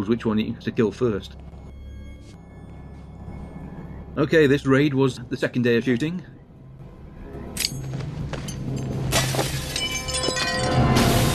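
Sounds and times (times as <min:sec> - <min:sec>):
speech: 0:00.0 - 0:01.5, 0:04.2 - 0:06.3
bright tinkling glass debris: 0:07.6 - 0:11.3
glass shattering: 0:08.5 - 0:11.3.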